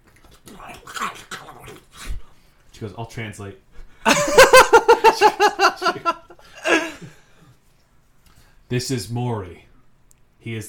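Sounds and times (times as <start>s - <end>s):
speech: 2.8s - 6.2s, 8.7s - 9.7s, 10.4s - 10.6s
laughter: 4.1s - 7.2s
person voicing a massive bright red crab with growls and whines: 6.6s - 7.1s.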